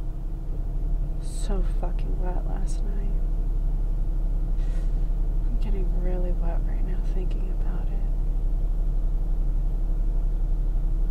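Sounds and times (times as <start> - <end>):
steady low rumble inside a car: 0.0 - 11.0
speech: 1.5 - 3.8, 5.6 - 8.2.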